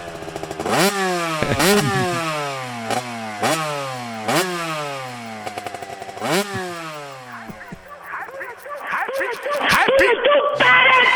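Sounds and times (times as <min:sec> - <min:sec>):
motorcycle engine chugging and revving: 0:00.0 - 0:11.1
laughter: 0:01.2 - 0:02.7, 0:07.6 - 0:11.1
speech: 0:01.5 - 0:02.1.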